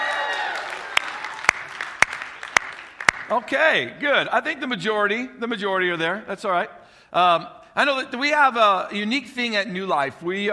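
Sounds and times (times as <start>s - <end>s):
church audience cheering and whooping during a worship service: 0.0s - 2.6s
church audience clapping during a worship service: 0.0s - 3.9s
speech: 3.3s - 10.5s.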